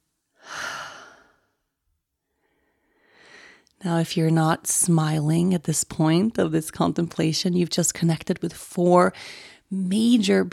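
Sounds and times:
deep breath in and out: 0.4s - 1.6s, 2.2s - 3.7s, 9.2s - 9.6s
fainter soft breath: 0.4s - 1.6s, 2.3s - 3.7s
speech: 3.8s - 10.5s.

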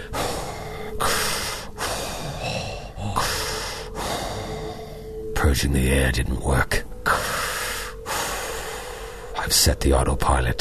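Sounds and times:
voice imitating a captain in a spacesuit panting for breath: 0.0s - 5.2s, 7.1s - 9.4s
speech: 5.5s - 6.8s, 9.5s - 10.6s.

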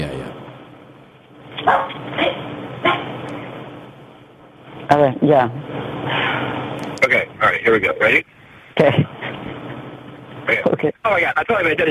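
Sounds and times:
low hum: 0.0s - 11.8s
dog barking: 1.6s - 3.1s
speech: 4.9s - 5.8s, 7.6s - 9.2s, 10.8s - 11.8s.

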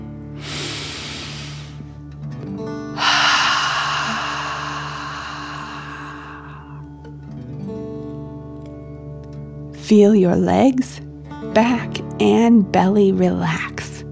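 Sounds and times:
soft steady music: 0.0s - 14.1s
deep breath drawn in sharply through the nose: 0.4s - 2.0s, 2.9s - 7.0s
forceful hissing exhale in a relaxation breathing exercise: 0.4s - 2.0s, 3.0s - 6.8s
speech: 9.9s - 13.9s.

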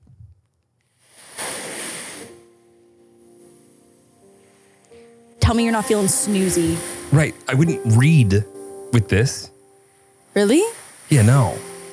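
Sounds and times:
ocean surf wave washing: 1.1s - 2.4s, 5.5s - 7.5s, 10.4s - 11.9s
speech: 5.5s - 9.5s, 10.4s - 11.7s.

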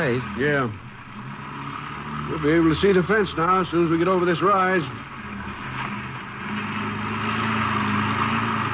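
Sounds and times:
speech: 0.0s - 0.9s, 2.3s - 5.0s
car engine humming while driving: 0.0s - 8.7s.

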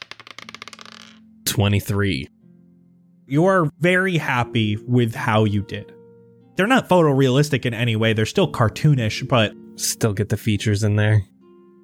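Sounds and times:
dice clattering across a hard tabletop: 0.0s - 1.2s
speech: 1.6s - 2.4s, 3.3s - 6.0s, 6.6s - 11.3s.

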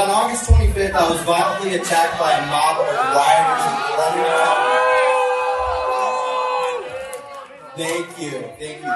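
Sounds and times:
speech: 0.2s - 4.8s, 7.8s - 8.9s
crowd of students screaming inside a venue: 0.9s - 7.3s.

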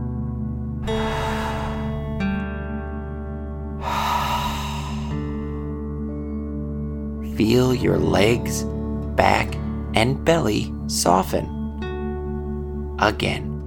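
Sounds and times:
steady soft musical drone: 0.0s - 13.6s
deep breath in and out during a guided breathing exercise: 0.8s - 2.4s, 3.7s - 6.4s
speech: 7.4s - 11.5s, 13.0s - 13.5s.

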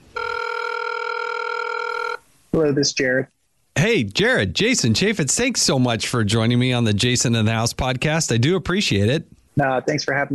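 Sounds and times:
telephone ringing with electronic ring tone as a call is placed: 0.1s - 2.2s
speech: 2.6s - 10.3s.

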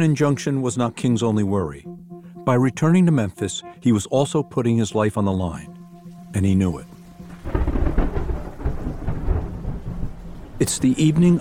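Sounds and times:
speech: 0.0s - 7.6s, 10.6s - 11.3s
heavy rain: 6.0s - 11.3s
deep rolling thunder: 7.3s - 11.3s.

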